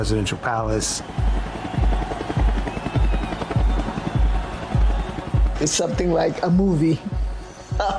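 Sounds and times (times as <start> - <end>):
speech: 0.0 - 1.5, 5.6 - 7.1
helicopter rotor beating: 1.2 - 6.4.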